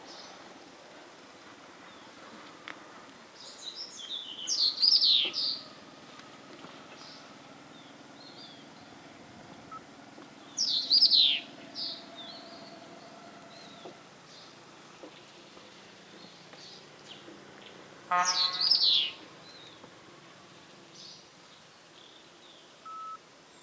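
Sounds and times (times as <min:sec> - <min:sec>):
Burmese yuhina: 0:04.1 - 0:15.2, 0:16.6 - 0:20.7.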